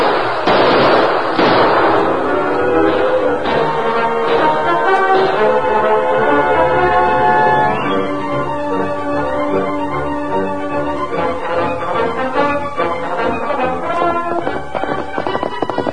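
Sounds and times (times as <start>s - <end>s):
gunshots: 0.0s - 5.9s
droning tonal backdrop: 1.8s - 15.9s.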